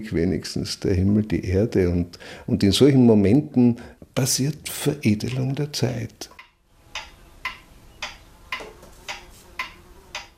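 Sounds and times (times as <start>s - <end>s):
speech: 0.0s - 6.3s
clock ticking: 5.2s - 5.6s, 6.2s - 10.3s.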